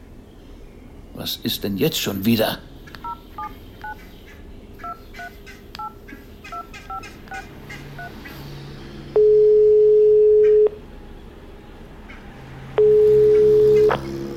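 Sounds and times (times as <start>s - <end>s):
speech: 1.2s - 2.7s
touch-tone dialing beeps on a telephone: 9.2s - 10.8s, 12.8s - 14.0s.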